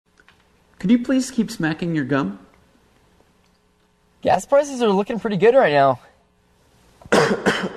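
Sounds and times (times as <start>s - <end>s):
speech: 0.8s - 2.5s, 4.2s - 6.1s
sharp harsh coughs: 7.1s - 7.7s.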